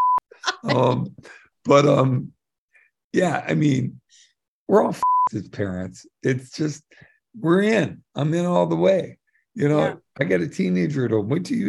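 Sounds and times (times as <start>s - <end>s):
censor bleep over a swear word: 0.0s - 0.2s, 5.0s - 5.3s
man making drawn-out groan-like vocal sounds: 0.6s - 1.1s
speech: 0.6s - 2.4s, 3.1s - 11.6s.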